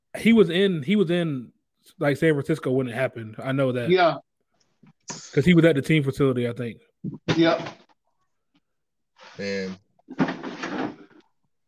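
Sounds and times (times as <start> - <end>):
speech: 0.2 - 4.3, 5.1 - 7.8, 9.4 - 10.3
box lid opening and closing: 10.1 - 11.3.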